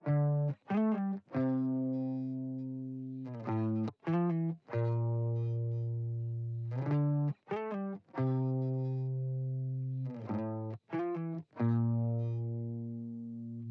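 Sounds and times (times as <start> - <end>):
guitar chords in D minor: 0.0 - 13.6.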